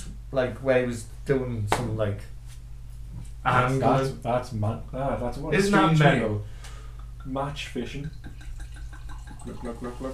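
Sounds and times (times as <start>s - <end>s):
steady low hum: 0.0s - 10.1s
speech: 0.3s - 2.4s, 3.4s - 6.5s, 7.2s - 8.4s, 9.4s - 10.1s
wine being poured into a glass: 8.1s - 10.1s.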